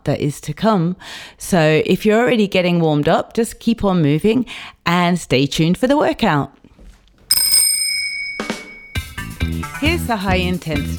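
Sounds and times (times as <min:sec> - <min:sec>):
speech: 0:00.0 - 0:06.6, 0:09.5 - 0:10.9
bicycle bell ringing: 0:07.3 - 0:09.3.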